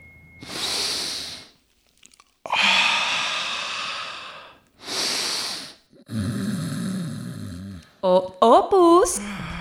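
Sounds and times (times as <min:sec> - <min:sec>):
slow deep breathing during relaxation: 0:00.4 - 0:07.0
speech: 0:08.0 - 0:09.4.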